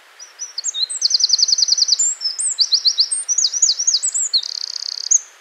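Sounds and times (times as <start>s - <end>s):
wren singing: 0.2s - 5.3s.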